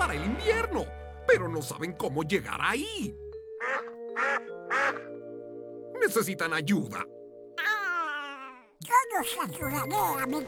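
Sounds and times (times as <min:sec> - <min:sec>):
speech: 0:00.1 - 0:03.2, 0:06.1 - 0:07.2, 0:08.8 - 0:10.4
ducks quacking: 0:03.6 - 0:05.2.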